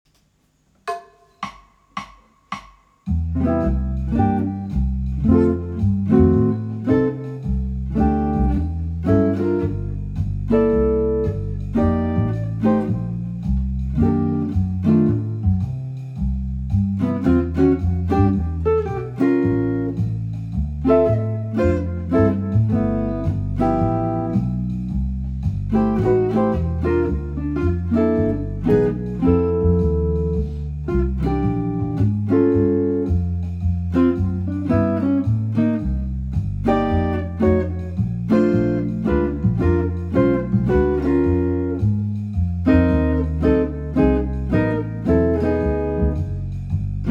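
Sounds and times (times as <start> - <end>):
blues jazz music: 3.1 - 47.1.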